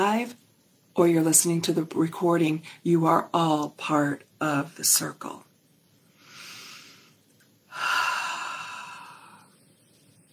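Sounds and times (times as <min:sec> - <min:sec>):
speech: 0:00.0 - 0:00.4, 0:01.0 - 0:05.5
deep breathing during a guided breathing exercise: 0:06.1 - 0:09.6.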